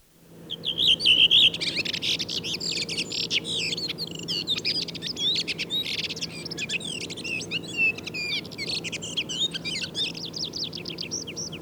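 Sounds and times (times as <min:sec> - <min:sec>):
redwing song with fluty whistles and scratchy twitters: 0:00.5 - 0:11.6.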